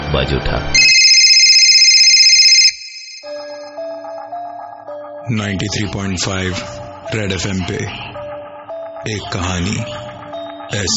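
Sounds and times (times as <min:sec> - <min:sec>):
speech: 0:00.1 - 0:00.9, 0:05.3 - 0:08.1, 0:09.0 - 0:10.1, 0:10.7 - 0:10.9
telephone ringing with a rapid electronic trill: 0:00.8 - 0:04.1
soft melodic tones: 0:00.8 - 0:04.3.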